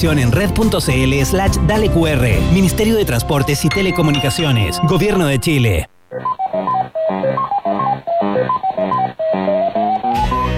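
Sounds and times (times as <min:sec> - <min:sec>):
speech: 0:00.0 - 0:06.3
retro arcade maze game music with quick beeping electronic notes: 0:03.2 - 0:10.5.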